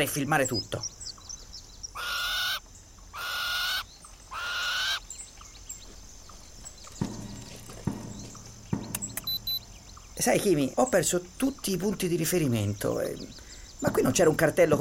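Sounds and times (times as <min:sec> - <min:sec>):
speech: 0:00.0 - 0:01.2, 0:10.2 - 0:14.8
birds giving loud drawn-out raspy calls: 0:00.0 - 0:14.8
soft thuds like hooves or footsteps: 0:05.8 - 0:09.6.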